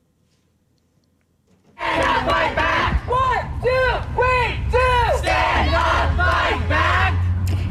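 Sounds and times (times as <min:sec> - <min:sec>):
steady low rumble of traffic or street noise: 0:01.7 - 0:07.6
crowd of protesters chanting outside the Leon County Courthouse in Florida: 0:01.8 - 0:03.4, 0:04.8 - 0:07.4.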